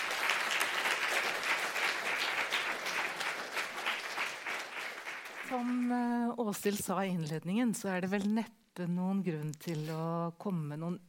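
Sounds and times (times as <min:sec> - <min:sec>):
audience applause: 0:00.0 - 0:06.0
speech: 0:05.5 - 0:11.0.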